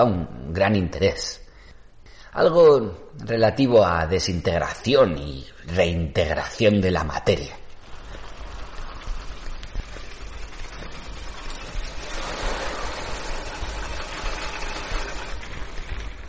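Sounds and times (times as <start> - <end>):
speech: 0.0 - 1.4, 2.3 - 7.6
car engine rumbling: 7.6 - 16.2.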